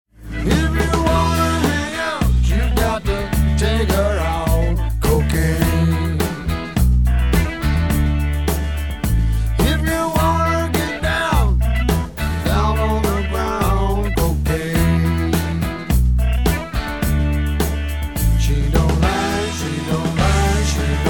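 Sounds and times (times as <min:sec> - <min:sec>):
music through soundproofing: 0:00.1 - 0:21.0.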